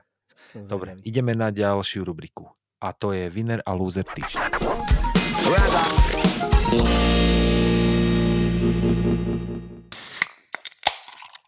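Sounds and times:
speech: 0:00.5 - 0:05.8
crackling bursts of Guinness beer: 0:04.1 - 0:10.2
Guinness beer can opening crack: 0:09.9 - 0:11.4.

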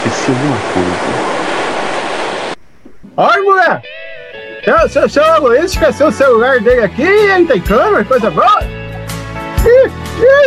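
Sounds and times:
ocean surf rushing as a person with a float wades into the sea: 0:00.0 - 0:02.6
speech: 0:00.3 - 0:01.2, 0:03.2 - 0:04.0, 0:04.7 - 0:08.7, 0:09.6 - 0:10.4.

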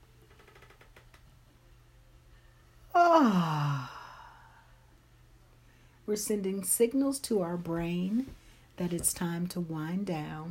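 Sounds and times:
person yawning: 0:02.9 - 0:04.6
speech: 0:03.2 - 0:03.6, 0:06.1 - 0:10.5.

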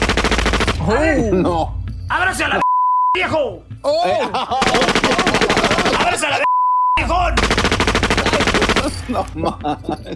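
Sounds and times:
rapid automatic gunfire in Sinaloa: 0:00.0 - 0:00.8, 0:04.6 - 0:06.1, 0:07.4 - 0:09.0
speech: 0:00.8 - 0:07.7, 0:08.8 - 0:10.1
laughter: 0:04.0 - 0:06.4, 0:08.2 - 0:10.1.

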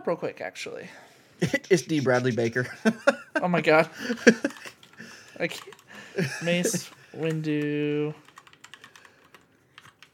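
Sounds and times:
speech: 0:00.0 - 0:04.7, 0:05.4 - 0:08.3
laughter: 0:01.4 - 0:05.3, 0:05.9 - 0:06.9
typing on a computer keyboard: 0:04.4 - 0:05.9, 0:06.8 - 0:10.1.

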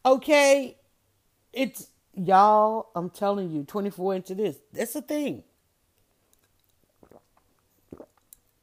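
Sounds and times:
speech: 0:00.0 - 0:00.8, 0:01.5 - 0:05.5
wet sipping slurps of lemonade: 0:06.4 - 0:08.5.

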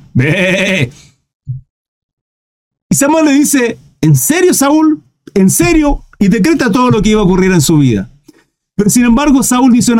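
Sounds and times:
voice imitating a cow with a wavering bleat: 0:00.1 - 0:01.0
speech: 0:00.2 - 0:01.1, 0:02.9 - 0:08.1, 0:08.8 - 0:09.9.

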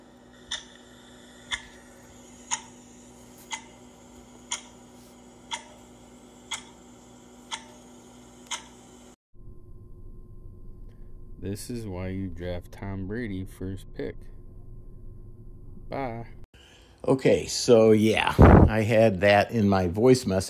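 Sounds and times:
faint hum: 0:00.0 - 0:20.4
clock ticking: 0:02.4 - 0:02.9, 0:03.5 - 0:04.8, 0:05.4 - 0:08.8
speech: 0:11.5 - 0:14.3, 0:15.9 - 0:16.4, 0:17.0 - 0:20.4.

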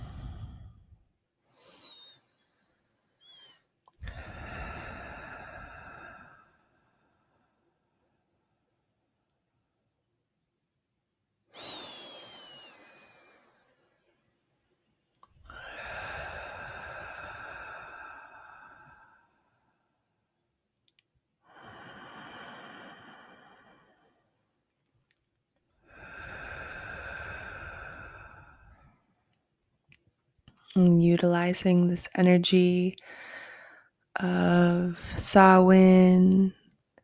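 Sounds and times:
person lying down breathing slowly and deeply to relax: 0:00.0 - 0:07.8, 0:11.5 - 0:14.2, 0:15.3 - 0:20.2, 0:21.4 - 0:24.4, 0:25.8 - 0:29.2, 0:33.0 - 0:34.0
speech: 0:30.8 - 0:33.3, 0:34.2 - 0:36.6.

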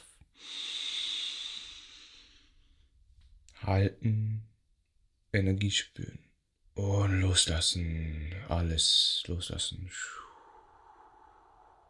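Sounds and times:
deep inhale through the belly during guided yoga relaxation: 0:00.3 - 0:02.8, 0:10.0 - 0:11.8
speech: 0:03.6 - 0:04.5, 0:05.3 - 0:10.3.

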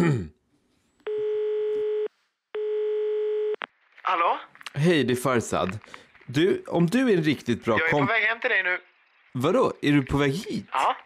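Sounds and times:
telephone ringback tone while placing a phone call: 0:01.1 - 0:03.6
speech: 0:04.1 - 0:11.0.

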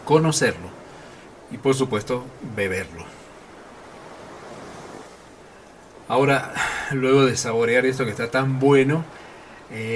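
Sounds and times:
ocean surf washing: 0:00.0 - 0:09.9
wind: 0:00.0 - 0:09.9
speech: 0:00.1 - 0:00.8, 0:01.5 - 0:03.2, 0:06.1 - 0:09.9.

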